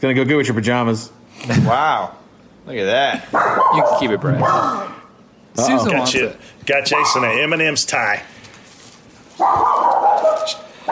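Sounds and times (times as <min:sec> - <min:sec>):
speech: 0:00.0 - 0:04.9, 0:05.6 - 0:08.4, 0:09.4 - 0:09.7
dog barking into a howl-like cry: 0:03.3 - 0:05.0, 0:06.9 - 0:07.4, 0:09.4 - 0:10.8.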